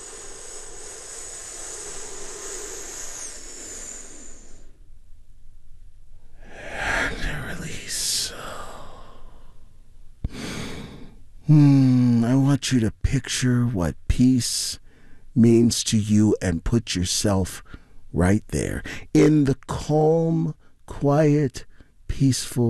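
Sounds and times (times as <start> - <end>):
deep breathing during a guided relaxation exercise: 0.0 - 4.9, 6.2 - 12.2, 14.8 - 15.4, 17.6 - 18.1, 18.8 - 19.2, 21.6 - 22.0
speech: 11.5 - 11.7, 12.6 - 14.8, 15.4 - 22.6.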